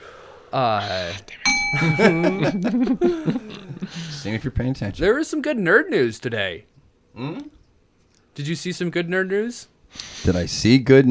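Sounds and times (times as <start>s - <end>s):
speech: 0.5s - 7.6s, 8.4s - 11.0s
bright metallic bell ding: 1.5s - 3.0s
laughter: 1.8s - 4.0s.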